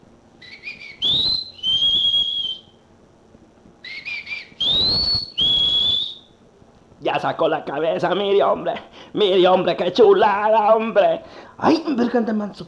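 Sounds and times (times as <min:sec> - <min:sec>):
quiet outdoor noise: 0:00.0 - 0:12.6
person whistling: 0:00.4 - 0:02.7, 0:03.8 - 0:06.3
speech: 0:07.2 - 0:12.6.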